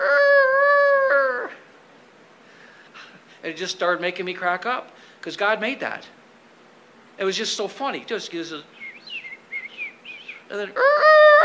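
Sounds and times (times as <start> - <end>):
rooster crowing in the morning: 0.0 - 1.6, 10.7 - 11.4
speech: 3.4 - 6.2, 7.2 - 8.8, 10.5 - 11.4.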